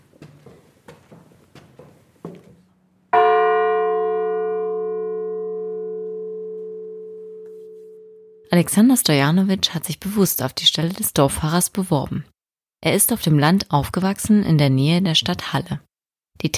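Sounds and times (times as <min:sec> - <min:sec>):
soft knocks and shuffles: 0:00.0 - 0:02.8
church tower bell strike: 0:03.2 - 0:08.5
speech: 0:08.5 - 0:16.5.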